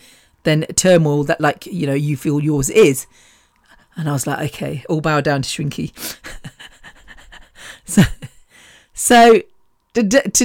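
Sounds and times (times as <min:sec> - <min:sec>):
speech: 0:00.4 - 0:03.3, 0:04.0 - 0:06.4, 0:07.9 - 0:08.2, 0:09.0 - 0:10.4
heavy panting from a person with irreversibly scarred lungs: 0:06.0 - 0:07.9.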